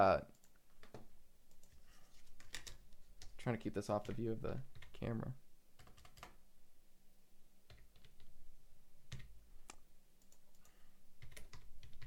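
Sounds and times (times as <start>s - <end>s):
speech: 0.0s - 0.3s, 3.4s - 5.4s
keyboard typing with sharp clicky keystrokes: 0.3s - 3.4s, 4.0s - 5.0s, 5.8s - 6.4s, 7.7s - 8.3s, 9.1s - 12.0s.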